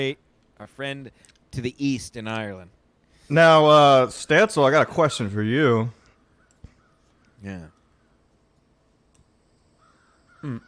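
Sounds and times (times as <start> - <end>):
speech: 0.0 - 6.0, 7.4 - 7.8, 10.4 - 10.6
crow cawing: 6.2 - 8.2, 9.8 - 10.6.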